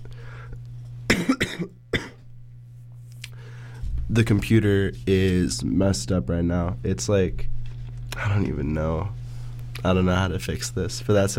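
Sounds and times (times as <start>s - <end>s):
steady low hum: 0.0s - 11.3s
man coughing harshly: 1.1s - 2.2s
speech: 4.1s - 7.6s, 8.2s - 9.2s, 9.8s - 11.3s.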